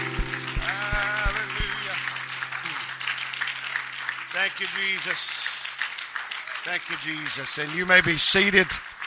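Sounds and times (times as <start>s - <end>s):
low hum: 0.0s - 4.0s
church audience clapping hands: 0.0s - 9.0s
speech: 4.4s - 5.4s, 6.6s - 8.9s.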